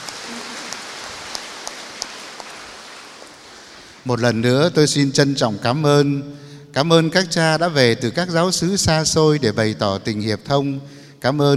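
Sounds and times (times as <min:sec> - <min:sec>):
large audience clapping: 0:00.0 - 0:04.1
speech: 0:04.0 - 0:11.5.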